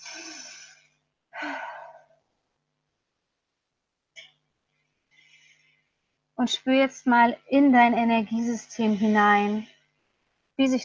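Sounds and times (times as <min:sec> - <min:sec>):
deep breathing in and out during a guided relaxation: 0:00.0 - 0:02.3, 0:04.9 - 0:06.2
speech: 0:06.4 - 0:09.7, 0:10.6 - 0:10.8.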